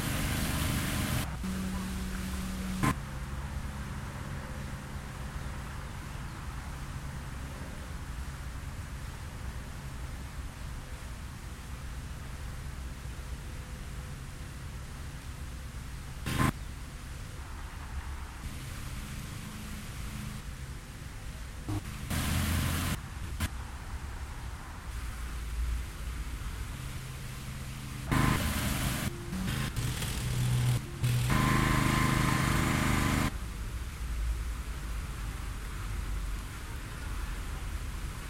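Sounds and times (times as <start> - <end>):
fountain pouring water: 0.0 - 1.3
brief louder bursts of splashing or wind: 0.0 - 2.9, 21.7 - 23.0, 26.8 - 33.3
low rumble of traffic: 0.0 - 38.2.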